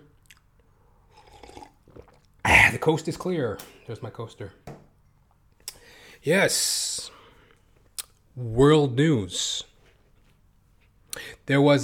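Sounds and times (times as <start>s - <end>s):
person sipping water: 0.2s - 2.8s
speech: 2.7s - 4.7s, 6.2s - 7.1s, 8.4s - 9.6s, 11.5s - 11.8s.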